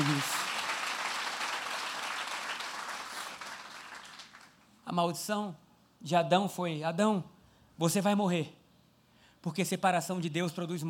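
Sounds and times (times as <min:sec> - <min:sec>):
audience applauding: 0:00.0 - 0:04.6
speech: 0:04.9 - 0:08.6, 0:09.4 - 0:10.8.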